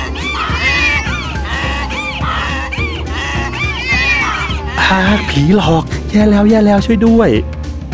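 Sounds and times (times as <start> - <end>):
rooster crowing: 0.0 - 5.3
dense chorus of animal bleats and howls: 0.0 - 5.9
speech: 4.9 - 7.5.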